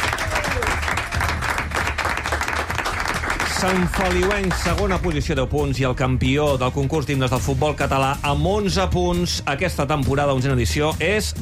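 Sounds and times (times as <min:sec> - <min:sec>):
audience applause: 0:00.0 - 0:05.2
speech: 0:03.6 - 0:11.3.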